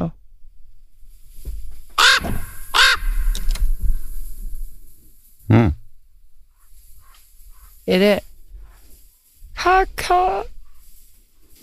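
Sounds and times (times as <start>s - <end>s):
common raven croaking: 2.0s - 4.0s, 5.5s - 7.8s
speech: 7.9s - 8.2s, 9.7s - 10.5s.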